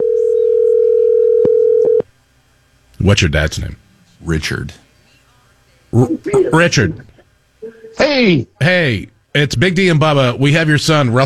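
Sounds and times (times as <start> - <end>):
telephone dial tone from a phone hooked up to the studio board: 0.0 - 2.0
speech: 3.1 - 4.8, 5.9 - 7.1, 8.0 - 11.2.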